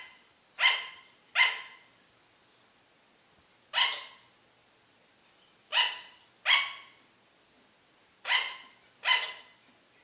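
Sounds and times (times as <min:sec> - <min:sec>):
sugar glider barking: 0:00.0 - 0:01.9, 0:03.7 - 0:04.4, 0:05.6 - 0:07.0, 0:08.2 - 0:09.6.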